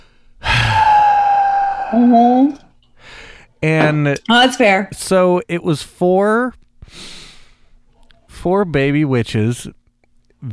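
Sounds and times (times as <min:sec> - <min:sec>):
voice imitating heavy disappointed breathing: 0:00.4 - 0:02.4
speech: 0:01.9 - 0:02.6, 0:03.6 - 0:07.2, 0:08.4 - 0:09.8.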